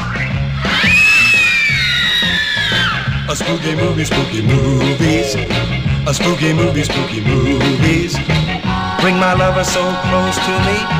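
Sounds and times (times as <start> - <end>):
music with a steady thumping beat: 0.0 - 10.9
movie audience screaming: 0.6 - 3.3
speech: 3.4 - 10.9.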